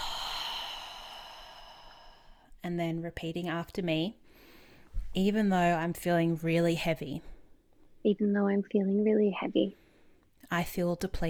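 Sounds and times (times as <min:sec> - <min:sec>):
deep breath in and out: 0:00.0 - 0:02.6, 0:04.2 - 0:05.0
speech: 0:02.6 - 0:04.2, 0:05.2 - 0:07.3, 0:08.0 - 0:09.8, 0:10.4 - 0:11.2.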